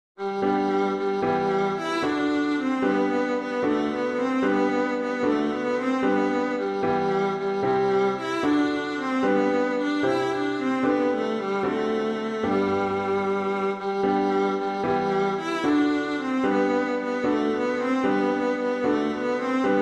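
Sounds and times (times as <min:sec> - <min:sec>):
piano: 0:00.2 - 0:19.7
viola: 0:00.2 - 0:19.7.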